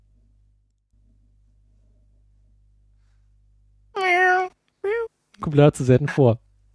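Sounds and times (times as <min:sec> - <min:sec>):
meow from a cat-shaped pencil sharpener: 0:04.0 - 0:05.1
speech: 0:05.4 - 0:06.4.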